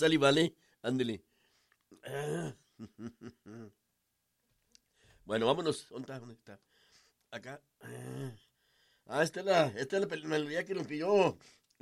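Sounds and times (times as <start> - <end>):
speech: 0.0 - 1.3, 1.9 - 3.8, 5.3 - 6.7, 7.3 - 8.4, 9.1 - 11.8
drawn-out throaty cough and short voiced coughs: 2.0 - 2.7.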